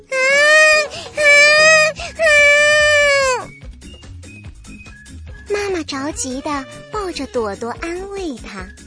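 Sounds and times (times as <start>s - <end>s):
baby crying: 0.0s - 3.5s
speech: 5.9s - 8.8s.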